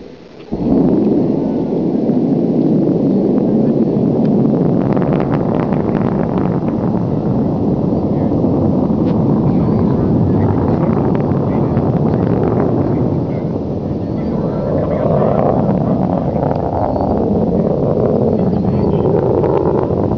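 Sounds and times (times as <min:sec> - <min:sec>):
Delta II rocket taking off at Vandenberg Air Force Base: 0:00.0 - 0:20.1.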